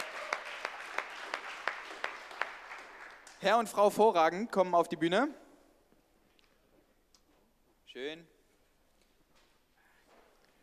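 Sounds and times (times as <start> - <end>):
audience applause: 0.0 - 3.4
speech: 3.4 - 5.4, 8.0 - 8.3.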